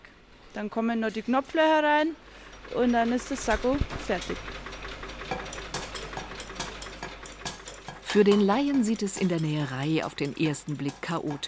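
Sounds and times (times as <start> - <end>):
speech: 0.6 - 4.6, 8.1 - 11.4
sewing machines whirring in a busy tailoring workroom: 2.2 - 11.4
clicks and clattering bursts: 5.3 - 11.4.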